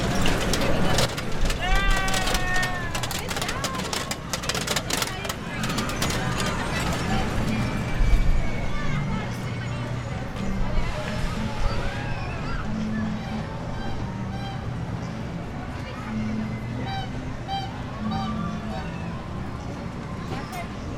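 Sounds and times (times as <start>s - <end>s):
sharp clatters and knocks: 0.0s - 8.0s
busy layer of voices talking: 0.0s - 20.9s
steady low hum of traffic or engines: 0.0s - 20.9s.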